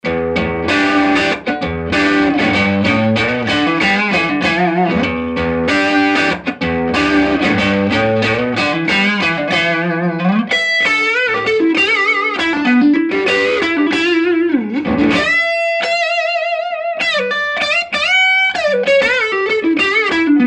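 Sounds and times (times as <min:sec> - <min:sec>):
crunch guitar tone on neck pickup: 0:00.0 - 0:20.4.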